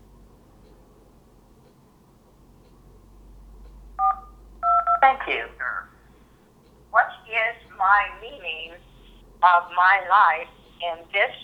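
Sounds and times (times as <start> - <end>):
faint low hum: 0.0 - 11.4
dual-tone telephone keypad beep entering a PIN: 4.0 - 5.3
speech: 5.0 - 5.6, 7.8 - 11.4.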